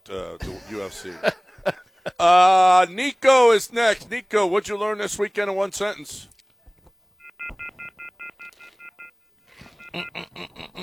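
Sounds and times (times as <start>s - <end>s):
speech: 0.1s - 6.4s, 10.0s - 10.2s
laughter: 0.4s - 2.4s, 9.8s - 10.8s
electronic phone keypad beeps: 7.2s - 9.2s
dialing tones: 7.2s - 10.4s.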